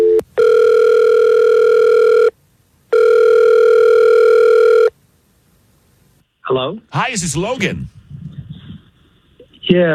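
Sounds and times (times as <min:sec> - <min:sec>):
electronic telephone ring tones of a call ringing out: 0:00.0 - 0:02.3, 0:02.9 - 0:04.9
speech: 0:06.6 - 0:08.0, 0:09.7 - 0:09.9.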